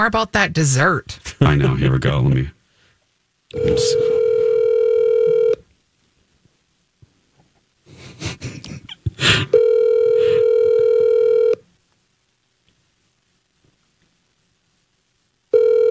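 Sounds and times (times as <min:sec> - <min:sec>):
speech: 0:00.0 - 0:02.6, 0:03.5 - 0:04.2
telephone ring tone on a call being placed: 0:03.5 - 0:05.6, 0:09.5 - 0:11.6, 0:15.5 - 0:15.8.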